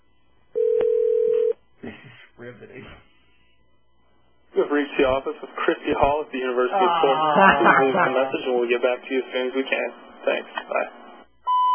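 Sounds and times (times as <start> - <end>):
electronic phone ring tone: 0.6 - 1.6
speech: 5.0 - 11.0
laughter: 6.6 - 8.8.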